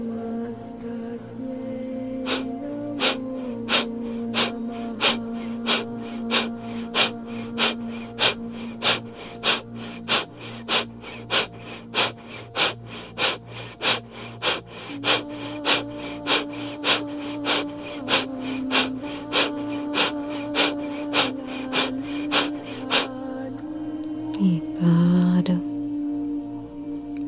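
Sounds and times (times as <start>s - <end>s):
low sustained drone: 0.1s - 27.1s
forceful rapid rhythmic breathing exercise with sharp nasal exhalations: 2.2s - 23.3s.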